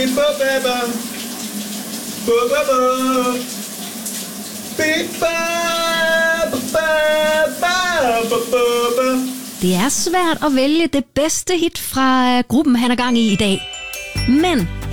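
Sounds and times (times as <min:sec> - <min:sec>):
speech: 0:00.0 - 0:01.2, 0:02.3 - 0:03.6, 0:04.8 - 0:14.8
shower water running: 0:00.0 - 0:10.5.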